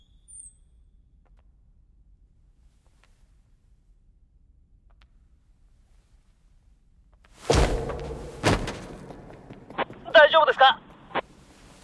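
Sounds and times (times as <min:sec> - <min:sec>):
heavy thuds of a door being unlocked and opened onto a service corridor: 0:07.4 - 0:09.8
speech: 0:10.4 - 0:10.8.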